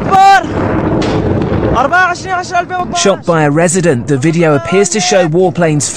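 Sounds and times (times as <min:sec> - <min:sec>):
artillery shell exploding in a residential area in Syria: 0:00.0 - 0:03.0
speech: 0:01.8 - 0:05.9.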